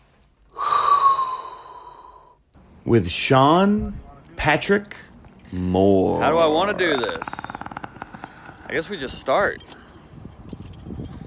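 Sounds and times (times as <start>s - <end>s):
deep breath being inhaled: 0.5s - 2.4s, 6.7s - 8.7s
speech: 2.8s - 7.4s, 8.7s - 9.7s.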